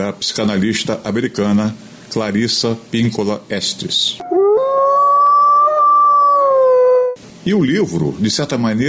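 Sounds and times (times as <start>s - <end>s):
speech: 0.0s - 4.5s, 7.4s - 8.8s
wolf howling: 4.2s - 7.2s.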